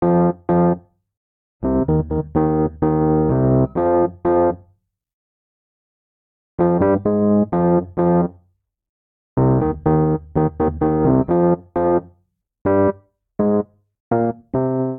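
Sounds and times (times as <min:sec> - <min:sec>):
dub vamp in F minor on electric keyboards: 0:00.0 - 0:00.8, 0:01.6 - 0:04.6, 0:06.6 - 0:08.3, 0:09.4 - 0:12.1, 0:12.7 - 0:14.9.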